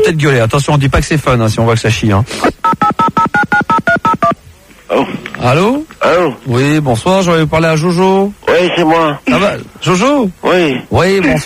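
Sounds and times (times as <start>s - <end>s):
speech: 0.1s - 2.9s, 5.4s - 11.4s
touch-tone telephone keypad dialing a number in Corsica: 2.6s - 4.4s.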